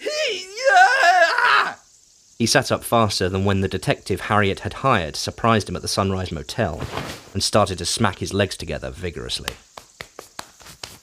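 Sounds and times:
man shouting in disgust: 0.0s - 1.8s
speech: 2.4s - 9.7s.

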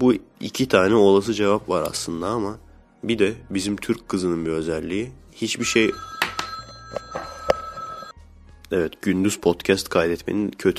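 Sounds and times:
speech: 0.0s - 6.2s, 8.7s - 10.7s
telephone ringing with electronic trill: 5.6s - 8.2s.

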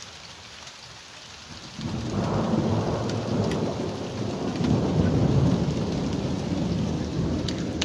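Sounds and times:
heavy rain pattering on surfaces: 0.0s - 7.8s
deep rolling thunder of a summer thunderstorm: 1.8s - 7.8s.

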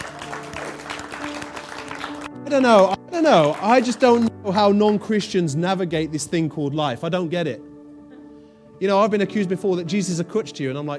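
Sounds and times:
audience applauding: 0.0s - 5.0s
speech: 2.5s - 7.7s, 8.8s - 10.9s.

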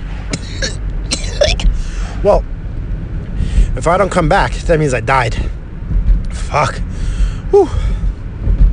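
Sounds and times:
steady low rumble: 0.0s - 8.7s
person coughing harshly after taking a deep hit: 0.3s - 1.7s
speech: 2.2s - 2.5s, 3.8s - 5.6s, 6.5s - 6.9s, 7.5s - 7.8s.

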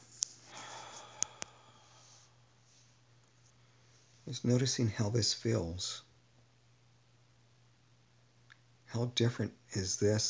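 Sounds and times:
soft breathy exhale: 0.4s - 3.0s
speech: 4.3s - 6.1s, 8.9s - 10.2s.

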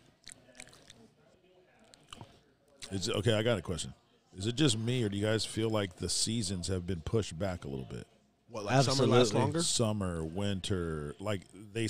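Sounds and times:
chewing with crisp crunchy bites: 0.0s - 1.1s
speech: 2.9s - 11.8s.

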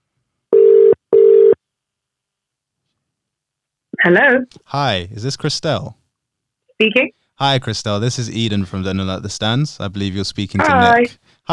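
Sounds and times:
ringback tone of an outgoing telephone call: 0.6s - 1.6s
speech: 4.0s - 6.0s, 6.8s - 11.5s
laughter: 4.7s - 5.9s, 7.4s - 11.1s.

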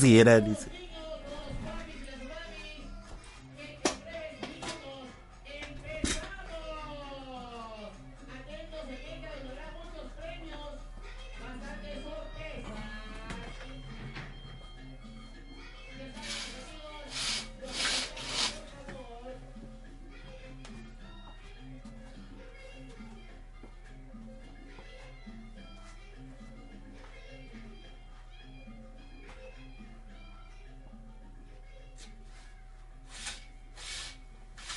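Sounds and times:
speech: 0.0s - 0.8s
voices: 0.0s - 33.5s
curtains being drawn: 16.2s - 18.7s, 33.1s - 34.7s.

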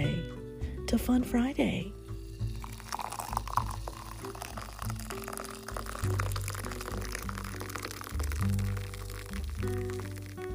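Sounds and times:
speech: 0.9s - 2.0s
coffee pouring into a mug: 2.1s - 10.5s.

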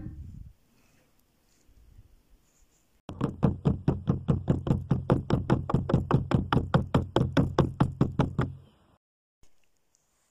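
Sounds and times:
loud knocking on a door: 3.1s - 8.6s.

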